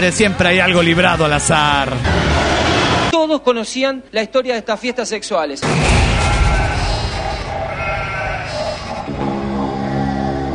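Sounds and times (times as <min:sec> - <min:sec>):
speech: 0:00.0 - 0:02.5, 0:03.2 - 0:06.6
sheep bleating: 0:05.9 - 0:10.2.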